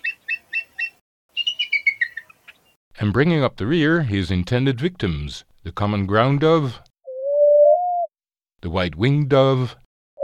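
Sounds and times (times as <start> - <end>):
bald eagle call: 0.0 - 2.7, 7.1 - 8.1
speech: 3.0 - 6.8, 8.6 - 9.8.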